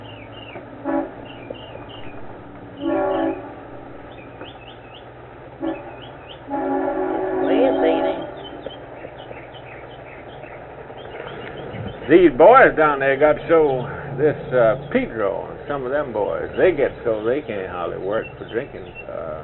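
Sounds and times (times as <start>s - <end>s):
low rumble: 0.0s - 19.4s
train horn blasts: 0.8s - 1.6s, 2.8s - 4.0s, 5.6s - 8.7s
speech: 12.1s - 19.4s.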